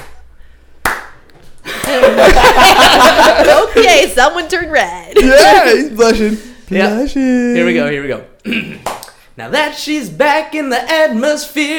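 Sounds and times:
single hand clap: 0.0 - 0.2, 0.8 - 2.0
people laughing: 1.6 - 4.1, 5.2 - 6.4
speech: 2.0 - 11.7.

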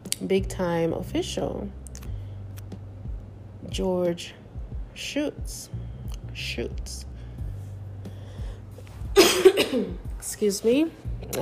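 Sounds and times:
speech: 0.2 - 1.8, 3.7 - 4.4, 5.0 - 5.8, 6.4 - 7.1, 9.6 - 11.4
person still recovering coughing harshly: 9.2 - 10.0.

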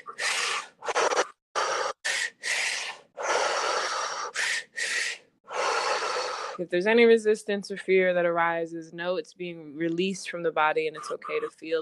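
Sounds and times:
loud rough belly breaths in a double inhale single exhale breathing exercise: 0.0 - 6.6
speech: 6.6 - 11.8.

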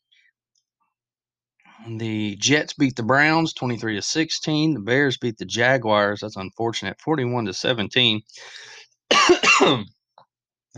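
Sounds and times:
speech: 1.8 - 10.0
raspy breath: 8.3 - 8.8
congested cough: 9.1 - 9.9.

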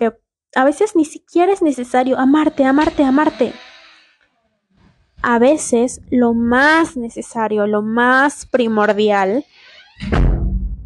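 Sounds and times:
speech: 0.0 - 3.7, 5.2 - 10.3
bedroom door creaking: 1.9 - 7.1, 8.1 - 10.6
bedroom door bumping shut with a heavy low thud: 9.9 - 10.6.

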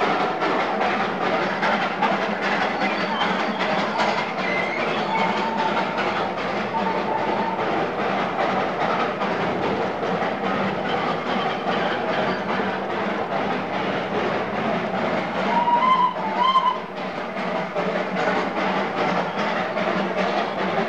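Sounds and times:
small mountain toy train climbing a steep grade on the Darjeeling railway: 0.0 - 20.8
brief squeal or whistle: 2.7 - 7.8, 15.4 - 17.0.

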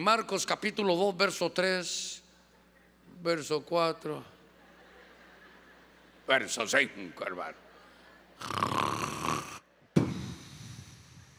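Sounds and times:
speech: 0.0 - 2.2, 3.2 - 4.3, 6.3 - 7.6, 8.4 - 8.7
laughter: 4.5 - 6.3
person imitating snoring: 8.4 - 9.6.

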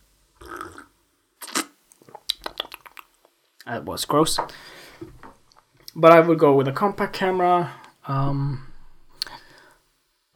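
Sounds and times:
person slurping a drink: 0.4 - 3.1
person gulping a drink: 0.4 - 3.3
wet mouth clicks: 0.4 - 3.4, 9.1 - 9.4
speech: 3.7 - 5.2, 6.0 - 8.7.

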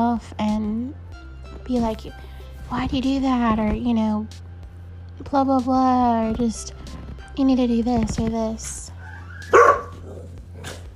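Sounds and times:
speech: 0.1 - 4.5, 5.2 - 8.9
dog barking: 9.0 - 10.9.

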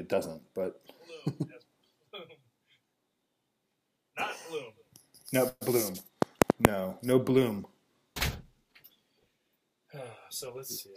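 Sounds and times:
speech: 0.0 - 1.6, 4.3 - 7.7, 10.0 - 10.9
door shutting with a solid thud: 8.2 - 8.5.

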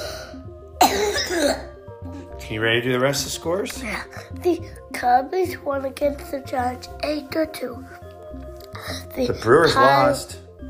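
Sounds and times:
harsh cough: 0.8 - 1.8
speech: 2.5 - 10.4.

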